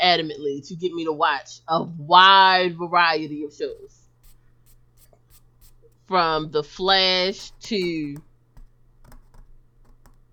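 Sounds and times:
speech: 0.1 - 4.0, 6.1 - 8.3
scratching something stuck off drawing paper: 3.6 - 10.3.

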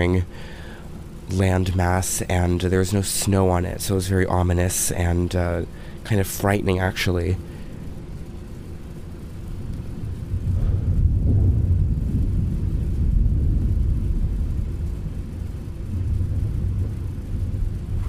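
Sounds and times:
speech: 0.0 - 0.6, 1.3 - 7.5
deep loud rolling thunder: 10.0 - 18.0.

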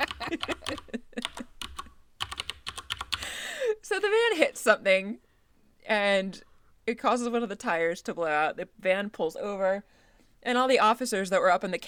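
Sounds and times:
clacky computer keyboard typing: 0.0 - 3.2
speech: 4.6 - 5.2, 5.9 - 11.8.

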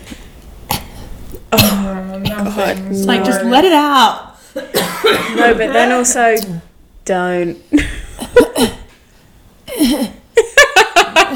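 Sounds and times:
person coughing: 1.5 - 2.7, 4.7 - 5.5, 8.2 - 8.9
speech: 1.5 - 8.0
laughter: 10.4 - 11.3.

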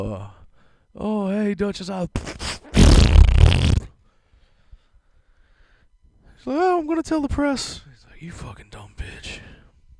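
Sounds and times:
speech: 0.0 - 0.4, 1.0 - 3.2, 6.4 - 9.5
loud sputtering fart noise: 2.2 - 3.9.

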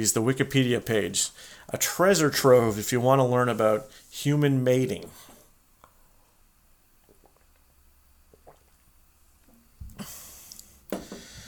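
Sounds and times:
speech: 0.0 - 5.3
quiet gulps: 6.8 - 11.1
person drinking water: 6.9 - 11.4.

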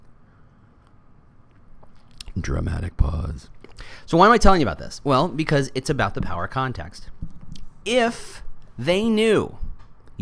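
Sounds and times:
low rumble: 0.0 - 10.2
person sipping coffee: 0.8 - 2.6, 3.2 - 4.1
soft slurps: 0.8 - 4.1
speech: 2.4 - 7.2, 7.8 - 9.6.

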